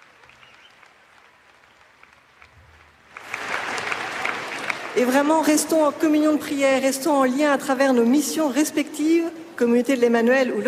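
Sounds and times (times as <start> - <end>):
ovation applause of many hands at a Christian gathering: 0.0 - 6.2
speech: 5.0 - 10.6.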